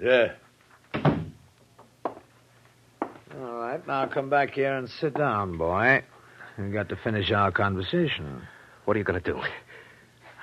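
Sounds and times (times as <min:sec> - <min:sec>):
speech: 0:00.0 - 0:00.4, 0:03.8 - 0:09.6
door slamming shut: 0:00.9 - 0:01.4.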